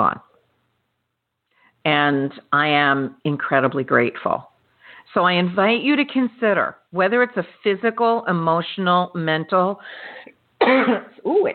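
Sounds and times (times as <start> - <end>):
speech: 0.0 - 0.3, 1.8 - 11.5
person coughing: 10.6 - 11.2.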